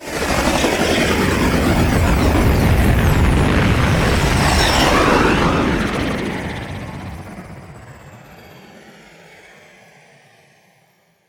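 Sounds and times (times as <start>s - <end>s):
aircraft drop off: 0.0s - 9.0s.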